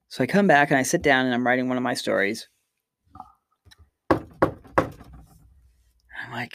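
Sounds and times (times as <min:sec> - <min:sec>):
speech: 0:00.1 - 0:02.5, 0:06.4 - 0:06.5
firm knocks on a wall: 0:04.1 - 0:05.4.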